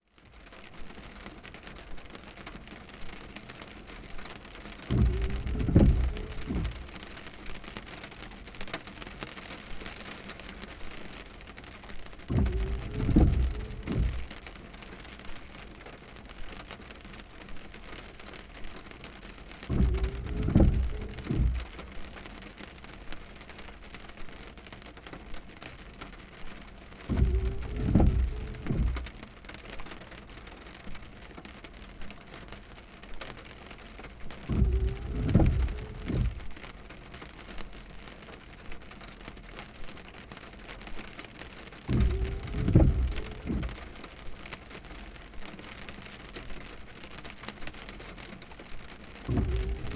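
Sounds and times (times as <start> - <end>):
rain: 0.0 - 49.9
windshield wipers: 0.5 - 49.9.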